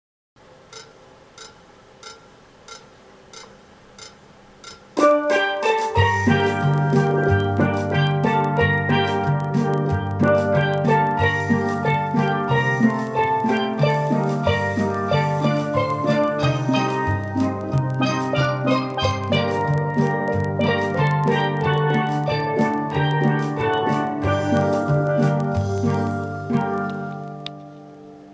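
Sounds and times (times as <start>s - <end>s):
steel band playing five pans accompaniment: 5.0s - 27.9s.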